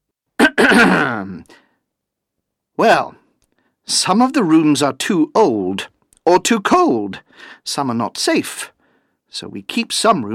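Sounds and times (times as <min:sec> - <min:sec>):
professor coughing: 0:00.4 - 0:01.4
voiced throat-clearing rasp: 0:00.4 - 0:01.4
speech: 0:00.6 - 0:01.6, 0:02.8 - 0:03.2, 0:03.9 - 0:10.3.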